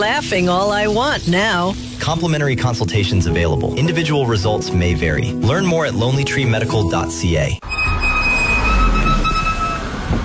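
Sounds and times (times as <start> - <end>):
road noise: 0.0 - 4.2, 6.9 - 10.2
speech: 0.0 - 8.0
worn car brakes squealing with high-pitched tone: 7.6 - 10.2.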